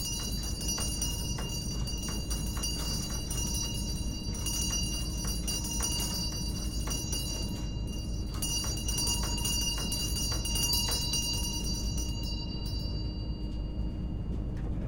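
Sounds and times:
antique mill bell ringing: 0.0s - 14.2s.

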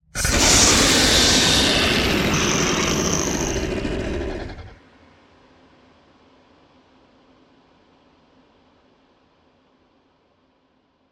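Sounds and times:
creature sounds: 0.2s - 4.8s.

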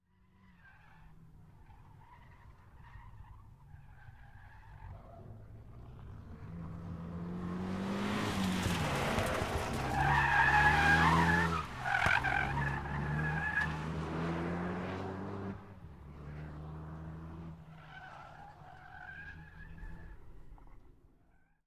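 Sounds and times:
car drifting past: 4.5s - 20.6s.

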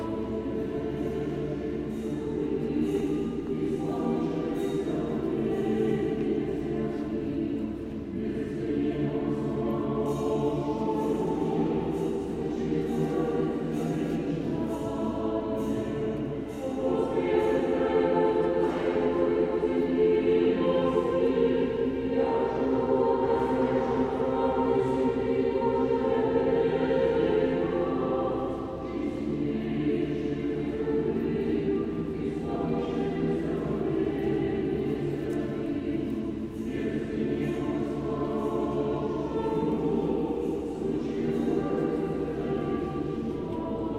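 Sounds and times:
church service at a cathedral: 0.0s - 43.9s.

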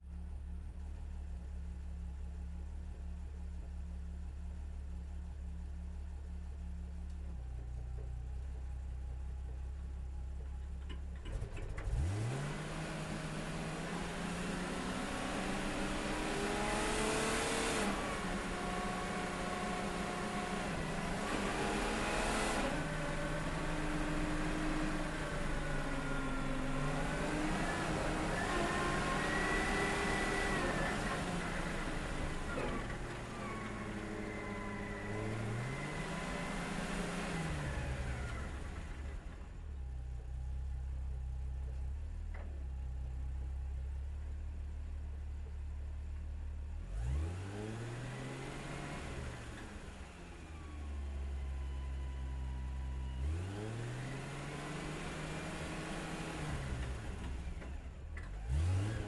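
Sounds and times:
vehicle driving slowly, stopping and reversing, recorded onboard: 0.0s - 59.0s.

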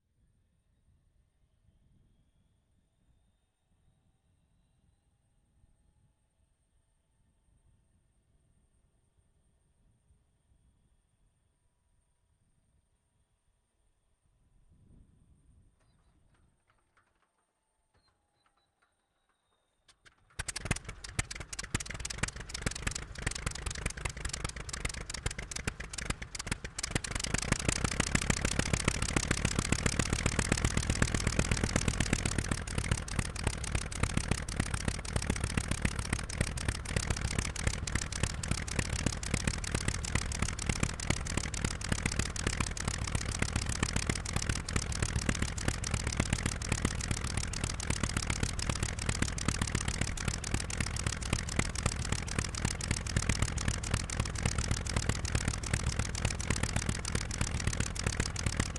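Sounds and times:
Mitsubishi Zero aircraft engine starting on ground: 15.7s - 58.7s.

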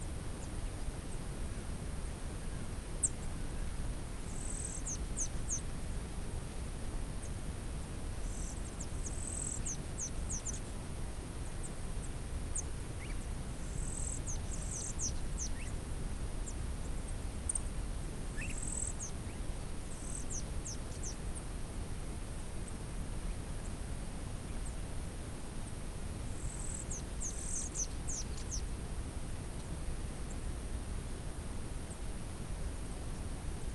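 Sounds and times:
desert ambience exterior in the Uyuni desert Bolivia: 0.0s - 33.7s.

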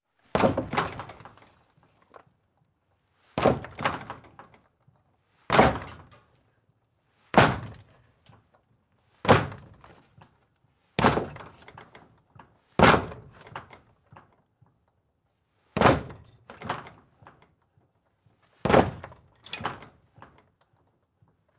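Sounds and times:
wood door rattling from kicking, interior: 0.3s - 1.4s, 3.4s - 4.5s, 5.5s - 6.1s, 7.4s - 7.8s, 9.3s - 9.8s, 11.0s - 11.8s, 12.8s - 13.7s, 15.8s - 17.0s, 18.6s - 20.0s.

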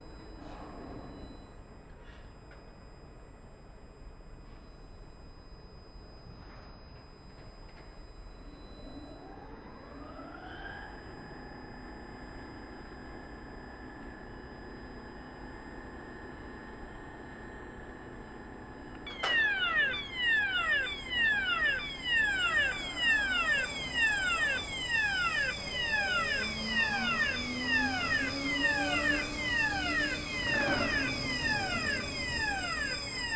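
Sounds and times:
container crane alarm at a port container terminal: 0.0s - 33.3s
container crane lift spreader frame moving at a port container terminal: 21.0s - 33.3s.

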